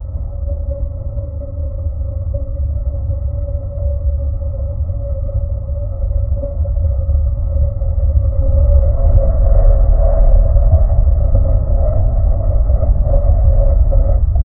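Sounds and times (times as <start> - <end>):
deep mechanical hum: 0.0 - 14.4.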